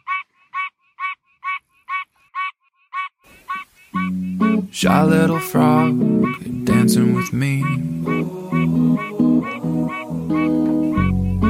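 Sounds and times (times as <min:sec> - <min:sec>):
duck quacking: 0:00.0 - 0:11.4
speech: 0:04.0 - 0:08.4
sustained musical tone: 0:04.0 - 0:11.4.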